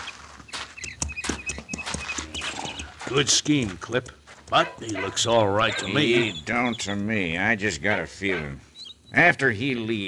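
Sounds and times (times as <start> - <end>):
horse hooves clip-clopping in a walking rhythm: 0.0 - 5.2
speech: 3.1 - 10.0.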